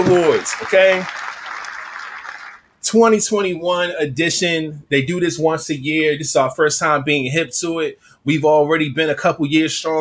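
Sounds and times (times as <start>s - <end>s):
speech: 0.0s - 1.2s, 2.8s - 9.9s
crowd clapping: 0.0s - 2.7s.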